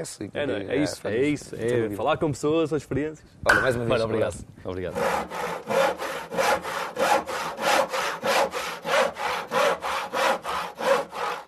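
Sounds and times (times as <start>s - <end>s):
speech: 0.0s - 5.8s
hand saw cutting through wood: 4.9s - 11.4s.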